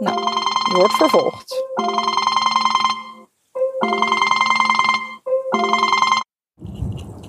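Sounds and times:
phone ringtone: 0.0s - 6.3s
speech: 0.7s - 2.0s
rustling noise: 6.6s - 7.2s.

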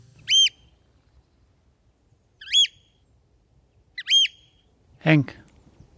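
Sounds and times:
Eurasian oystercatcher piping calls: 0.2s - 0.8s, 2.4s - 3.0s, 3.9s - 4.6s
speech: 5.0s - 5.4s.

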